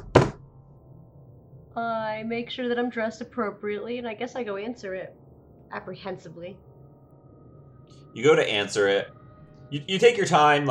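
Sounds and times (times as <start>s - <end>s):
single solid knock on a wooden door: 0.0s - 0.4s
speech: 1.8s - 6.7s, 8.2s - 10.6s.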